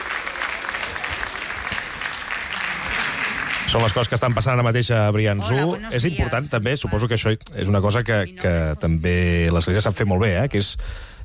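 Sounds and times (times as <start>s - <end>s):
applause from a gathering during a papal visit: 0.0s - 4.9s
speech: 3.7s - 11.2s.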